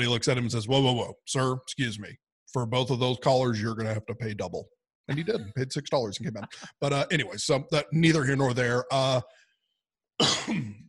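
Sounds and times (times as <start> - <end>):
speech: 0.0 - 9.4, 10.2 - 10.8
person coughing: 10.2 - 10.8
raspy throat clearing: 10.2 - 10.8.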